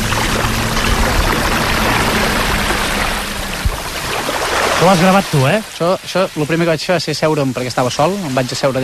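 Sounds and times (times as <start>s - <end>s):
calm sea waves lapping on a beach: 0.0s - 8.8s
speech: 4.8s - 8.8s.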